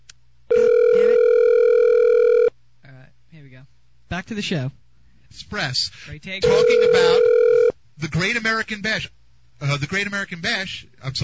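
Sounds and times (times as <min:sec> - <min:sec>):
cell phone dial tone of an outgoing call: 0:00.5 - 0:02.5, 0:06.5 - 0:07.7
speech: 0:04.2 - 0:07.3, 0:08.0 - 0:11.2.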